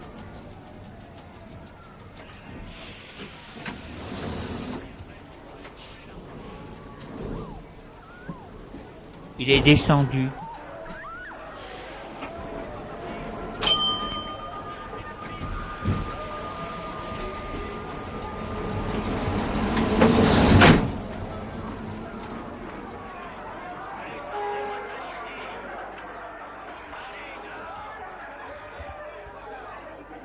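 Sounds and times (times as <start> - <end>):
footsteps in a busy street: 0.0 - 23.1
crowd chatter in a busy street: 0.0 - 30.2
metro train running: 0.0 - 30.2
speech: 9.4 - 10.4
sharp metallic clanks of a metro train: 13.4 - 21.2.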